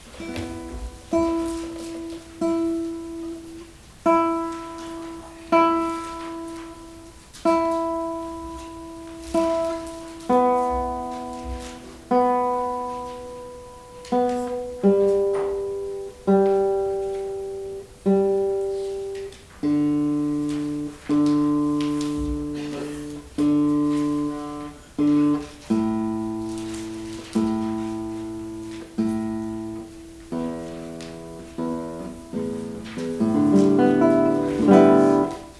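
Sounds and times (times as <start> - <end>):
guitar recorded with ECM-S1 microphone on ZOOM M2 MicTrak: 0.0 - 35.5.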